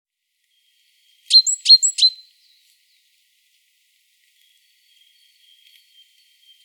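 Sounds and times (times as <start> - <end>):
great tit Parus major calls: 1.3 - 2.2.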